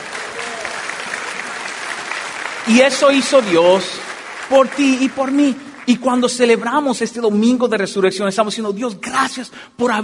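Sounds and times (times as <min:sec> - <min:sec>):
church congregation applause at an Easter Sunday service: 0:00.0 - 0:07.4
speech: 0:02.7 - 0:10.0.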